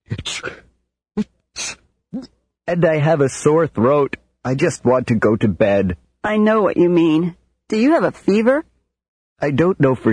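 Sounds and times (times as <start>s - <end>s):
person with a cold and sore throat sneezing: 1.6s - 1.8s
speech: 2.7s - 8.7s, 9.4s - 10.1s.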